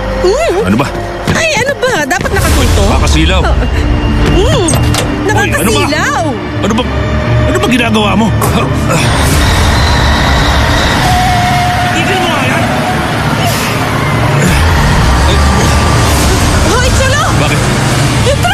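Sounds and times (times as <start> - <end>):
speech: 0.2 - 9.5
heavy truck engine revving and pulling off: 8.7 - 18.5
people shouting: 8.9 - 18.5.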